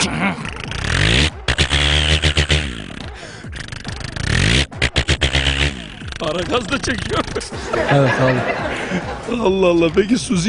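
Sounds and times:
speech: 0:00.0 - 0:01.3, 0:06.2 - 0:10.4
man's voice imitating a tractor engine revving: 0:00.0 - 0:07.5
laughter: 0:06.2 - 0:10.1.

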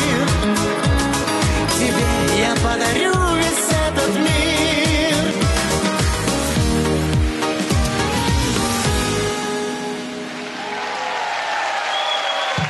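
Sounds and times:
song with heavy bass beats and sustained chords: 0:00.0 - 0:09.4
audience applause: 0:09.4 - 0:12.6
faint cheering: 0:10.3 - 0:12.6.

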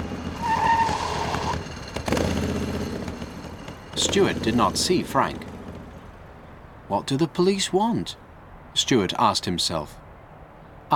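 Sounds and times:
brief high motorbike brake squeal: 0:00.0 - 0:06.6
motorbike engine rumbling and settling into a low idle: 0:00.0 - 0:06.6
speech: 0:04.0 - 0:05.5, 0:06.9 - 0:08.2, 0:08.8 - 0:10.0.

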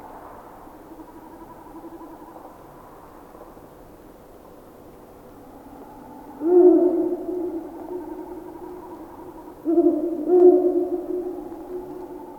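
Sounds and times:
Ural owl hooting: 0:06.4 - 0:12.3.

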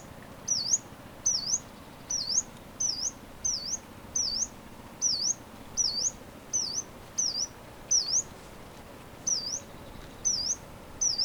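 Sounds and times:
Yellow-browed warbler Phylloscopus inornatus calling with piercing high slurred notes: 0:00.0 - 0:08.2, 0:09.3 - 0:11.2.

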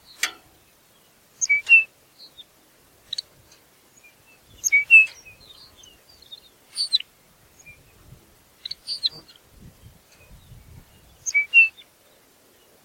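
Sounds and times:
Lapland longspur Calcarius lapponicus calls: 0:01.4 - 0:02.4, 0:04.0 - 0:07.9, 0:08.6 - 0:09.4, 0:10.2 - 0:11.9.

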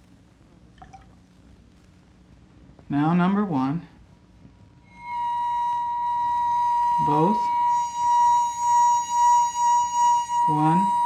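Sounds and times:
steady low hum: 0:00.0 - 0:11.0
bright liquid plinks: 0:00.8 - 0:01.2
water trickling into a glass to tune it: 0:00.8 - 0:01.2
speech: 0:02.9 - 0:03.9, 0:07.1 - 0:07.6, 0:10.5 - 0:11.0.

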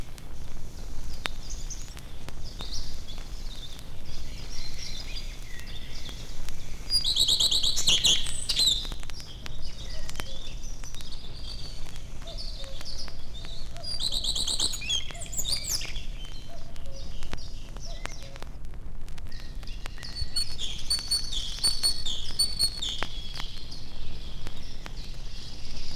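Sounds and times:
steady low outdoor hum: 0:00.0 - 0:25.9
common redstart singing: 0:00.9 - 0:18.5, 0:19.2 - 0:25.9.

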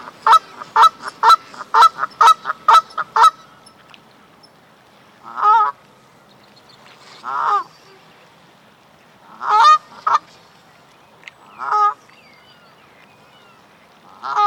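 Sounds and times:
Canada goose honking: 0:00.0 - 0:03.4, 0:05.2 - 0:05.8, 0:07.2 - 0:07.7, 0:09.3 - 0:10.2, 0:11.6 - 0:12.0, 0:14.1 - 0:14.4.

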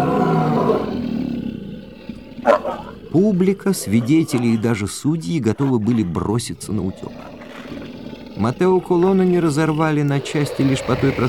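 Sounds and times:
monster lion-like roar: 0:00.0 - 0:11.2
speech: 0:02.5 - 0:07.3, 0:08.4 - 0:11.2.

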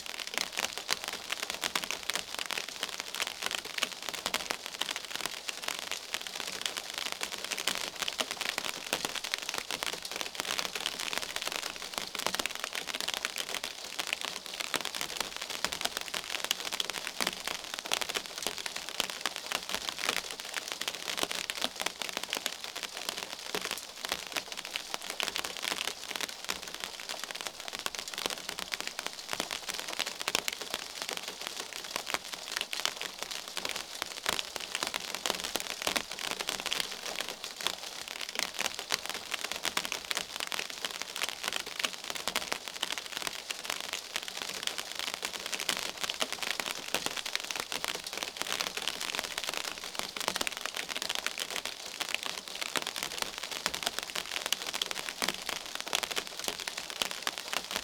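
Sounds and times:
rain on a surface: 0:00.0 - 0:57.8.

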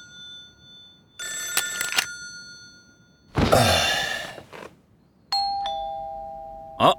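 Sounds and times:
bright electronic doorbell chime: 0:00.0 - 0:03.3, 0:05.3 - 0:06.9.

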